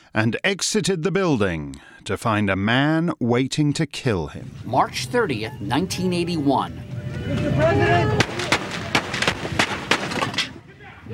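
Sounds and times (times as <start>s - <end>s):
speech: 0.1s - 8.4s
dense noisy background: 4.4s - 10.0s
gunshots fired outside a Washington hotel: 8.1s - 10.6s.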